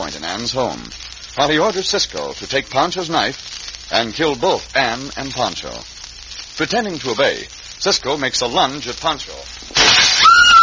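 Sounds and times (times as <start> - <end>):
speech: 0.1 - 5.9, 6.6 - 9.6
lamp smashing with glass shattering: 9.8 - 10.5.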